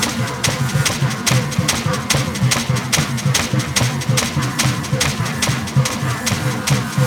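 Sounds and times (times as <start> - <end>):
giant fan running: 0.0 - 7.0.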